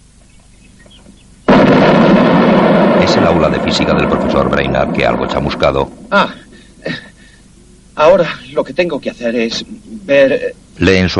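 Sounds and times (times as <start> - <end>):
loud explosion with a dense roaring rumble: 1.5 - 6.9
speech: 3.2 - 7.1, 8.0 - 11.1.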